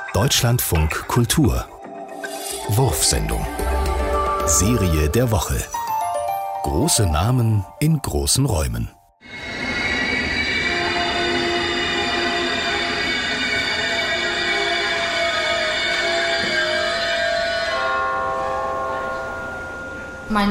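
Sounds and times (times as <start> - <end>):
speech: 0.2 - 1.7, 2.7 - 3.7, 4.5 - 5.8, 6.6 - 9.0
German ICE high-speed train brakes and wheels squealing pulling into station: 9.2 - 20.3.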